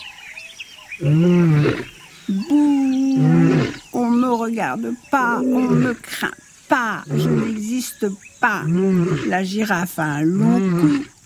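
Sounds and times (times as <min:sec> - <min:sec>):
speech: 0:01.0 - 0:01.9, 0:04.5 - 0:11.1
voice imitating a lion's mournful roar: 0:01.0 - 0:04.3, 0:05.2 - 0:07.8, 0:08.5 - 0:11.1.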